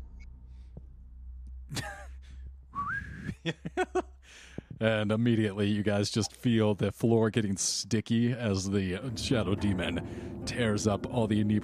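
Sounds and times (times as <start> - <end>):
person whistling: 2.8 - 3.4
laughter: 3.2 - 4.1
speech: 3.4 - 4.1, 4.8 - 11.6
breathy exhale: 4.2 - 4.7, 10.0 - 10.4.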